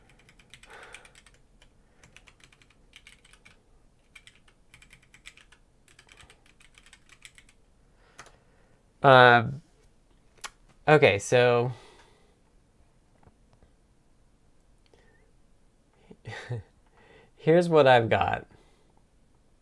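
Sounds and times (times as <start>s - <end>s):
typing on a computer keyboard: 0.0s - 7.6s
speech: 9.0s - 9.6s, 10.9s - 11.8s, 17.5s - 18.5s.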